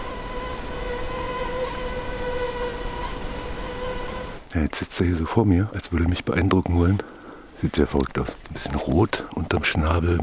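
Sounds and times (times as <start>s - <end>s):
continuous whine of mosquitoes: 0.0s - 4.5s
hissy outdoor background: 0.0s - 10.2s
speech: 4.5s - 10.2s.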